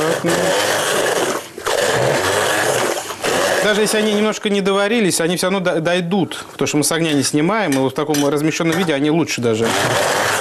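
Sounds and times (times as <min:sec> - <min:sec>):
blender pureeing boiled vegetables in a pot on the heat: 0:00.0 - 0:04.4, 0:09.5 - 0:10.3
speech: 0:00.2 - 0:00.6, 0:03.7 - 0:10.3.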